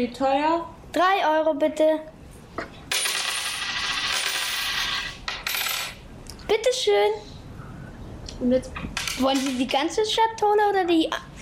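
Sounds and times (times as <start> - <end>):
speech: 0.0 - 2.9, 6.6 - 7.3, 8.4 - 11.4
East German coins from a case pouring and clattering together: 2.9 - 6.0.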